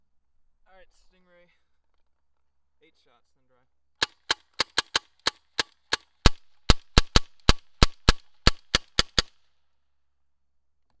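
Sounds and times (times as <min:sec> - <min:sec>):
guns firing: 0:04.0 - 0:09.3.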